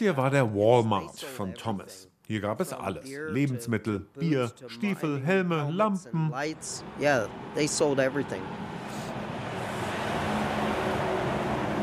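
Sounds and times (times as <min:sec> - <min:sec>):
speech: 0:00.0 - 0:09.0
log truck roaring past with engine rumble and road noise: 0:06.4 - 0:11.8.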